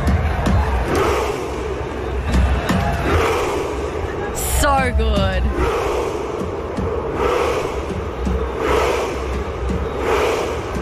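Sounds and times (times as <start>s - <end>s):
football fans in a large stadium chanting in unison: 0.0s - 10.8s
speech: 4.8s - 5.6s.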